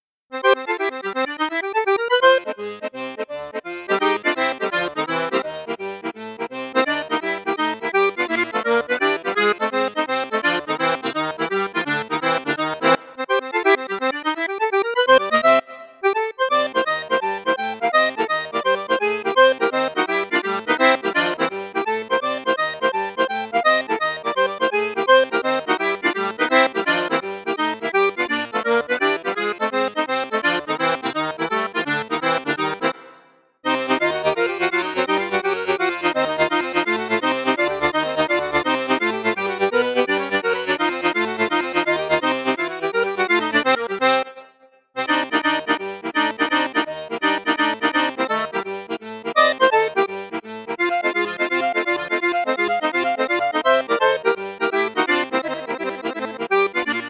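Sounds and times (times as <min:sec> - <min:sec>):
accordion with bassoon flute register: 0:00.0 - 0:57.0.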